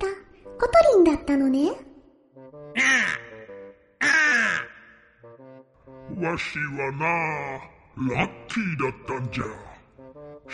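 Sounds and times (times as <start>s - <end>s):
speech: 0.6s - 1.9s, 6.2s - 9.7s
red bird giving raspy crow-like caws: 2.8s - 5.2s.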